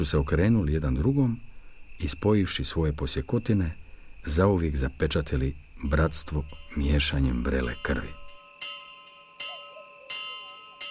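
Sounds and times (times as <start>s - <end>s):
speech: 0.0s - 8.2s
alarm bell struck frantically to call for help: 6.3s - 10.8s.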